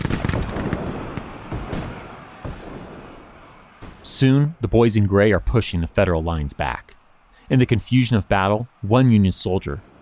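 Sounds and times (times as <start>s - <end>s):
rifle gunfire in a Civil War battle: 0.0s - 3.0s
speech: 4.2s - 9.9s.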